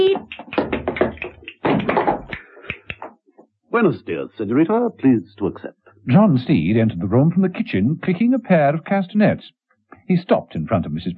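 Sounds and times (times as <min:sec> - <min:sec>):
knocking on an apartment's open front door: 0:00.6 - 0:02.3
speech: 0:03.8 - 0:11.1.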